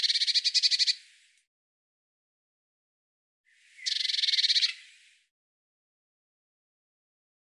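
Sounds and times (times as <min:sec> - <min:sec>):
Eurasian blue tit buzzy churring calls: 0:00.0 - 0:01.1, 0:03.7 - 0:04.9.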